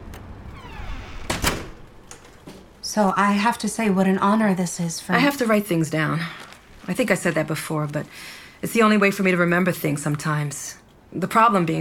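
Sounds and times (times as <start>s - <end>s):
door closing thuds: 0.5s - 2.6s
speech: 2.9s - 11.7s.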